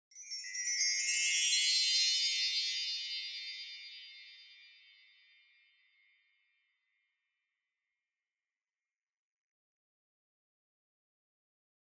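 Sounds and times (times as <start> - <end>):
wind chimes with reverb: 0.1 - 6.5.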